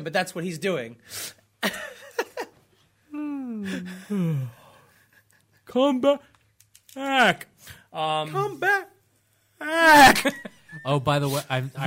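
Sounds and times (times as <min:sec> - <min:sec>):
speech: 0:00.0 - 0:02.3, 0:03.6 - 0:04.6, 0:05.7 - 0:06.3, 0:06.9 - 0:08.9, 0:09.6 - 0:11.8
person yawning: 0:03.1 - 0:04.8.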